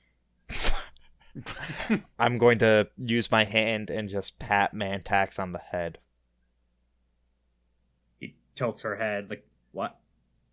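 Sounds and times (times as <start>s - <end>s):
sneeze: 0.5s - 1.0s
speech: 1.4s - 6.0s, 8.2s - 10.0s.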